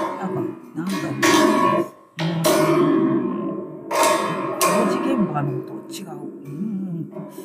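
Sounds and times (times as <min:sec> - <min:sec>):
spring drum shaken, metallic ringing: 0:00.0 - 0:05.7
spring drum loud clanging crashes: 0:00.0 - 0:06.4
speech: 0:00.8 - 0:01.7, 0:05.4 - 0:07.4.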